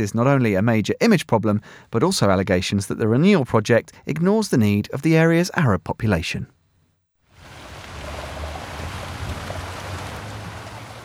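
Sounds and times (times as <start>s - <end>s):
speech: 0.0s - 6.6s
fountains splashing outside city hall: 7.3s - 11.0s.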